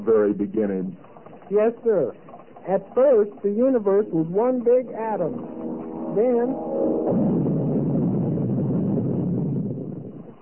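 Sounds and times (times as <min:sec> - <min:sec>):
speech: 0:00.0 - 0:07.3
deep roaring explosion sound effect representing the Big Bang: 0:05.4 - 0:10.2.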